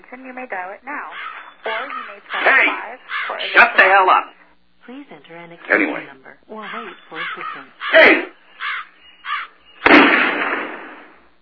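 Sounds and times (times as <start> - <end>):
speech: 0.1 - 8.4
crow-like caws: 1.1 - 2.3, 3.0 - 3.5, 6.6 - 9.7
harsh noisy burst: 9.8 - 11.4.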